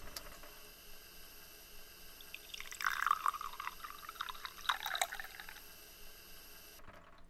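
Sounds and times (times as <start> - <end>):
water running into a wound wash bottle: 2.1 - 5.8.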